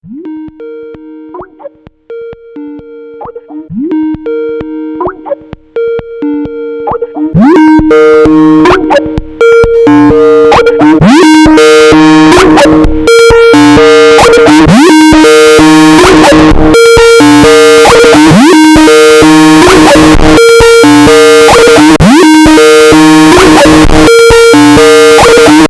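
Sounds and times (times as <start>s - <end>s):
loud distorted Skype ring tone: 0.2s - 25.6s.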